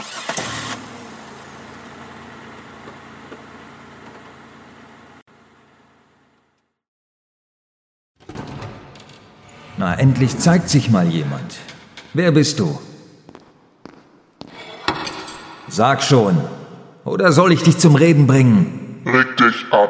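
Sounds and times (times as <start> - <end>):
car engine starting and running: 0.0 - 6.6
speech: 9.8 - 12.9, 15.8 - 19.8.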